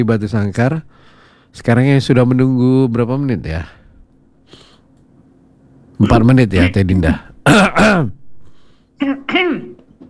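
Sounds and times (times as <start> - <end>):
speech: 0.0 - 3.8, 6.0 - 8.2, 9.0 - 9.8
woman's loud raspy cough: 7.4 - 8.2, 9.0 - 9.9.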